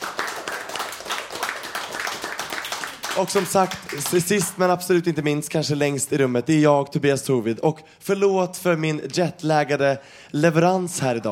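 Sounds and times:
applause for a piece of music: 0:00.0 - 0:04.8
speech: 0:03.2 - 0:11.2.

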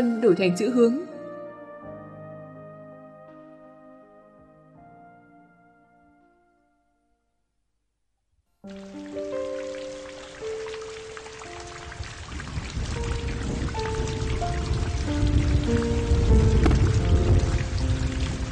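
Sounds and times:
speech: 0:00.0 - 0:01.1
soft sustained musical notes: 0:00.0 - 0:07.1, 0:08.7 - 0:18.5
steady rain: 0:08.7 - 0:18.5.

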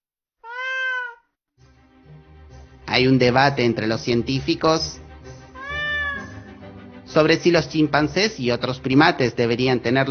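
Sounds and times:
cat meowing: 0:00.4 - 0:01.3, 0:05.6 - 0:06.6
speech: 0:02.9 - 0:05.0, 0:07.2 - 0:10.0.

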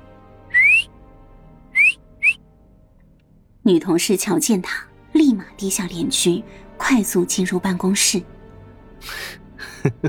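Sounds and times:
man whistling flirtatiously from a window railing: 0:00.5 - 0:00.9, 0:01.8 - 0:02.4
speech: 0:03.7 - 0:08.4, 0:09.0 - 0:10.0.

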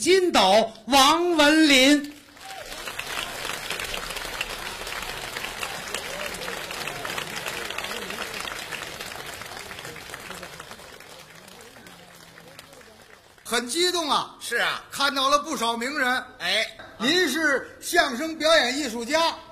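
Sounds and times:
speech: 0:00.0 - 0:02.1, 0:13.5 - 0:19.4
audience applause at a crosstalk comedy performance: 0:02.2 - 0:13.6.

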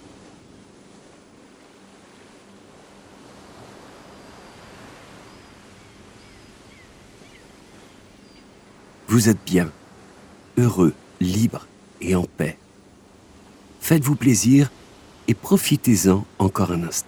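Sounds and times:
faint wind: 0:00.0 - 0:17.0
ocean waves at sea heard from a boat: 0:00.0 - 0:17.0
speech: 0:09.1 - 0:09.8, 0:10.6 - 0:12.6, 0:13.9 - 0:17.0.

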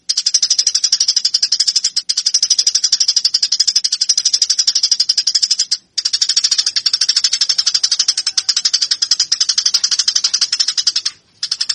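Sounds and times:
Eurasian tree sparrow fighting chatter: 0:00.0 - 0:11.7.

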